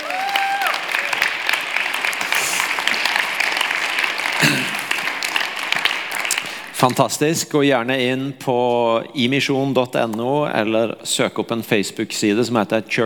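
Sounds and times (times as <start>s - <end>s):
audience applause: 0.0s - 6.8s
speech: 6.8s - 13.0s.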